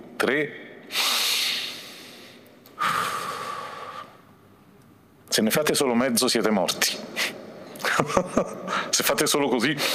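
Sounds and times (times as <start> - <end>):
speech: 0.2 - 1.0, 5.4 - 7.4, 8.0 - 9.9
audience taking a deep breath in unison: 0.9 - 4.3.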